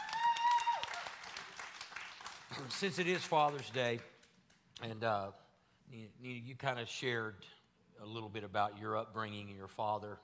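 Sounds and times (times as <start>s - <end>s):
scattered audience applause: 0.0s - 4.0s
speech: 2.6s - 4.1s, 4.8s - 10.2s.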